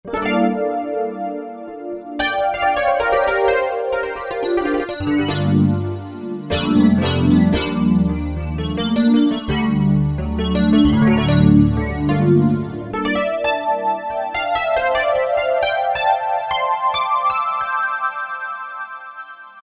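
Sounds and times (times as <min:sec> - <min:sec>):
E-mu Morpheus electric piano: 0:00.1 - 0:19.3.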